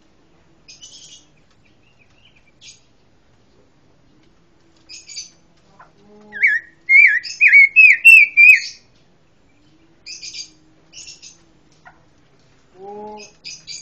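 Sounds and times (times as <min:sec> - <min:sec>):
pancawarna songbird chirping and giving looping whistled notes: 0:00.7 - 0:02.9, 0:04.9 - 0:05.4, 0:06.3 - 0:08.9, 0:09.5 - 0:11.4.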